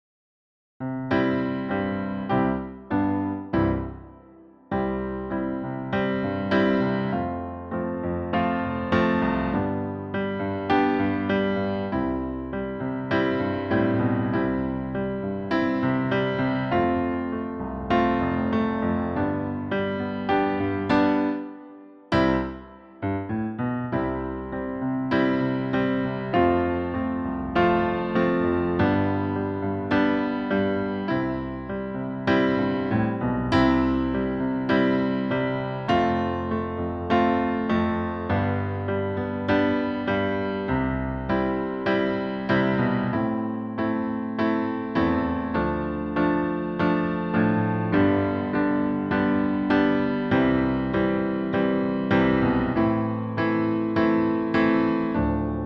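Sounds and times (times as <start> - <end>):
duet chords: 1.1 - 55.6.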